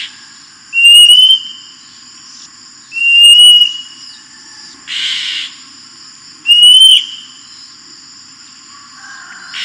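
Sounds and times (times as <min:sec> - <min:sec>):
Oriental magpie-robin singing vigorously with scratchy buzzing bursts and bright slurred whistles: 0:00.8 - 0:01.6, 0:03.0 - 0:04.0, 0:06.5 - 0:07.3.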